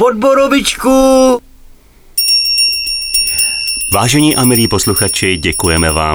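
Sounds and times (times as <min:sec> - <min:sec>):
speech: 0:00.0 - 0:01.4, 0:04.0 - 0:06.1
small Christmas hand bell jingling: 0:02.2 - 0:06.1.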